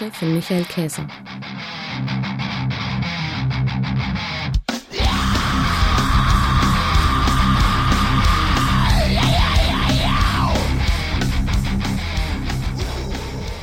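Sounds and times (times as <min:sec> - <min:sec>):
speech: 0:00.0 - 0:02.4
heavy metal music with distorted guitars and pounding drums: 0:00.0 - 0:13.6
harsh sustained screamed vocal: 0:04.9 - 0:11.2, 0:12.6 - 0:13.6.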